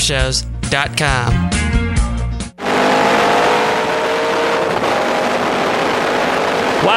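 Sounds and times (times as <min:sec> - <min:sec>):
speech: 0:00.0 - 0:01.8
Cobra sports car engine roaring: 0:02.6 - 0:06.9.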